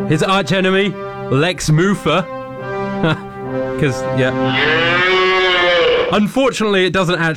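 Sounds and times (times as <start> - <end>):
speech: 0.1 - 2.4, 3.0 - 5.1, 6.1 - 7.3
cow mooing: 4.3 - 6.2.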